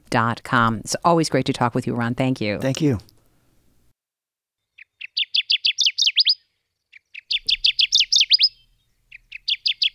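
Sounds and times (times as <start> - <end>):
speech: 0.1 - 3.1
Kirtland's warbler singing: 4.7 - 9.9.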